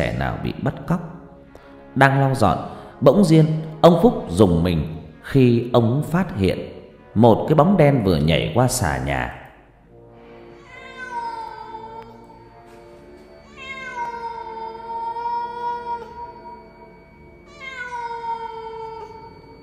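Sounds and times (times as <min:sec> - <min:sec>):
speech: 0:00.0 - 0:01.2, 0:02.0 - 0:09.4
black cat on a roof beam yowling eerily: 0:10.6 - 0:12.4, 0:13.4 - 0:19.6.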